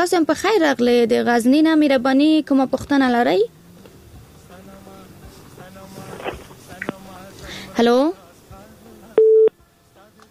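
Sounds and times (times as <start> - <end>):
speech: 0.0 - 3.6, 7.8 - 8.2
telephone busy tone after a dropped call: 9.2 - 9.5.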